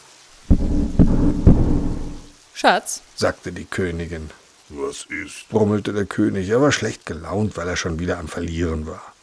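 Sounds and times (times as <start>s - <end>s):
heavy rain: 0.0s - 9.2s
deep thunder cracks rolling into a low rumble: 0.5s - 2.3s
speech: 2.6s - 9.1s.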